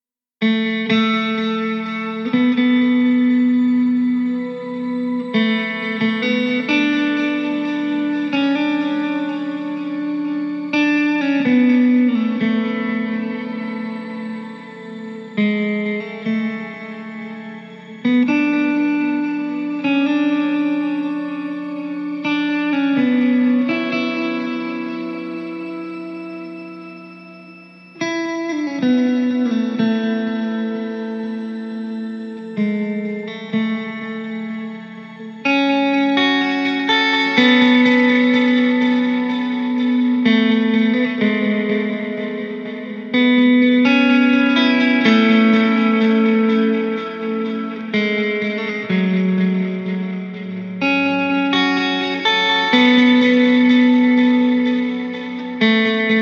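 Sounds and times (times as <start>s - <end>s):
isolated guitar: 0.4s - 56.2s.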